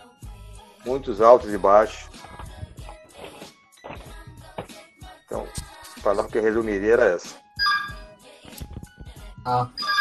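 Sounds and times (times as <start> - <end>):
speech: 0.8 - 2.3, 6.0 - 7.4, 9.5 - 9.8
telephone ringing with a bright electronic chime: 7.6 - 8.0, 9.7 - 9.9.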